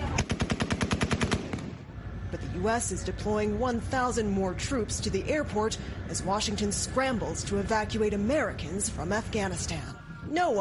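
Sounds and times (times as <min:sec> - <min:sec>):
rapid automatic gunfire: 0:00.1 - 0:01.8
speech: 0:02.3 - 0:10.6.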